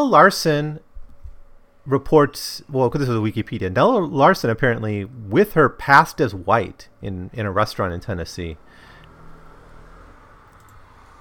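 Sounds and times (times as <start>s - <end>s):
speech: 0.0s - 0.9s, 1.8s - 8.9s
noisy car driving past with engine rumble and road hiss: 8.8s - 11.1s.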